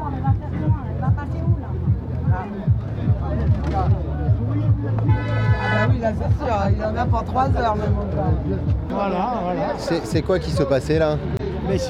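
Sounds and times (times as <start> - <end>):
crowd murmuring: 0.0 - 11.8
voices chattering: 0.0 - 11.8
truck horns honking at a roadblock: 5.0 - 6.1
brighter higher honk: 5.1 - 6.0
speech: 6.1 - 11.8.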